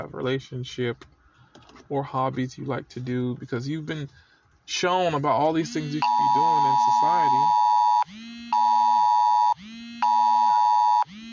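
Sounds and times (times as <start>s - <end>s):
speech: 0.0s - 1.1s, 1.9s - 8.2s
phone alert beeping in alternating high and low tones: 5.6s - 11.0s.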